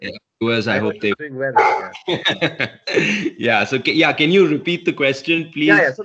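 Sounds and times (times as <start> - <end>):
speech: 0.0 - 6.0
laughter: 0.4 - 6.0
dog barking in sharp yappy bursts: 1.6 - 2.6.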